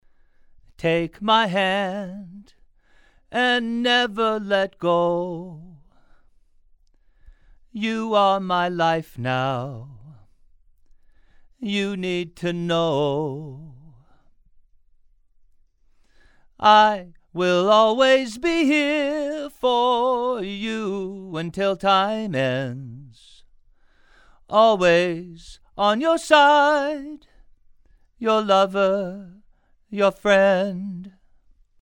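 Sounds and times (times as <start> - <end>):
male vocals: 0.7 - 2.6, 3.2 - 6.0, 7.7 - 10.4, 11.5 - 14.3, 16.6 - 23.5, 24.4 - 27.4, 28.2 - 31.2.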